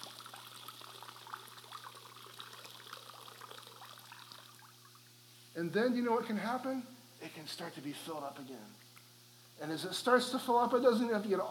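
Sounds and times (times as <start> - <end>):
water squeezed from a sponge trickling into a bucket: 0.0 - 5.2
speech: 5.6 - 8.8, 9.6 - 11.4.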